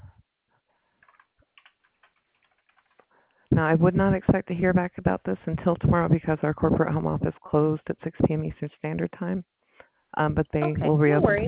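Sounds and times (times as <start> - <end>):
computer keyboard typing: 1.0 - 3.4
speech: 3.6 - 9.6, 10.2 - 11.4.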